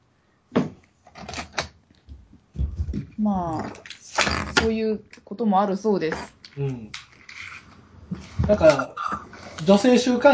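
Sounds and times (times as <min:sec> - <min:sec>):
door being shut against the cold with dull knocks and thuds: 0:02.1 - 0:03.2
speech: 0:03.2 - 0:07.0, 0:08.5 - 0:09.0, 0:09.6 - 0:10.3.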